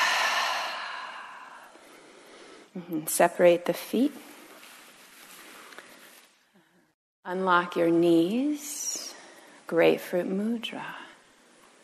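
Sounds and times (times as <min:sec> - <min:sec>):
exhale through the mouth during a standing breathing exercise: 0:00.0 - 0:02.7
speech: 0:02.8 - 0:04.3, 0:07.3 - 0:08.9, 0:09.7 - 0:11.0.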